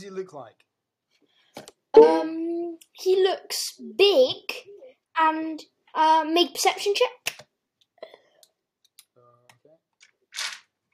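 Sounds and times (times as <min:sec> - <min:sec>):
speech: 0:00.0 - 0:00.7, 0:01.6 - 0:07.2
dice clacking as they are scooped up off the floor: 0:10.0 - 0:10.7.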